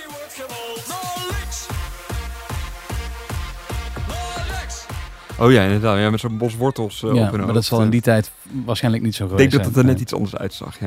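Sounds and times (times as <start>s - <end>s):
brass band march-like music at a street parade of Dutch football fans: 1.3s - 6.2s
speech: 5.4s - 10.8s.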